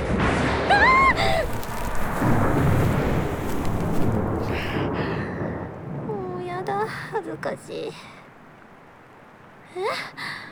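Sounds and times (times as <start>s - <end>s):
heavy continuous rumble of thunder: 0.0s - 7.7s
speech: 7.4s - 8.2s.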